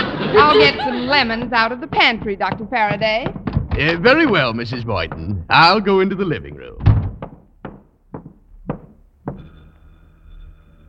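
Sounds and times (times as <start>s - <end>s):
laughter: 0.0s - 1.7s, 3.8s - 6.4s
speech: 0.4s - 6.8s
firm knocking on the front door of an apartment: 0.6s - 5.6s, 6.8s - 9.5s.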